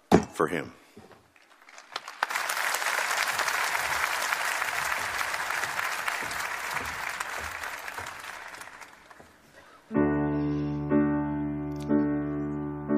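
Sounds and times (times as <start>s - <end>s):
speech: 0.4s - 0.8s
large audience clapping and cheering at the end of a song: 1.3s - 9.6s
sustained music with a steady tone: 9.9s - 12.9s.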